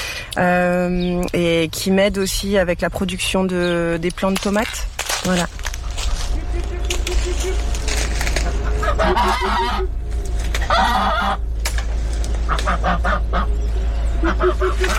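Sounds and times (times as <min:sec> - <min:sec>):
steady low rumble of noise: 0:00.0 - 0:14.9
speech: 0:00.4 - 0:06.1, 0:09.0 - 0:10.0, 0:10.7 - 0:11.5, 0:12.5 - 0:14.9
chickens clucking on a farm: 0:05.4 - 0:14.9.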